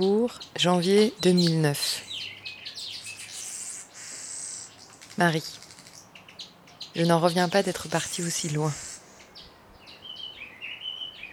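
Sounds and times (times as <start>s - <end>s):
speech: 0.0s - 2.4s, 5.2s - 5.6s, 7.0s - 8.9s
small garden birds chirping and trilling: 0.0s - 11.3s
soft outdoor hiss: 1.3s - 6.9s, 7.9s - 11.3s.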